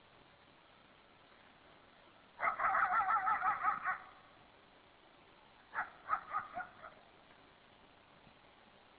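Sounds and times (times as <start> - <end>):
coyote yips and warbles: 2.4 - 4.3, 5.7 - 7.1.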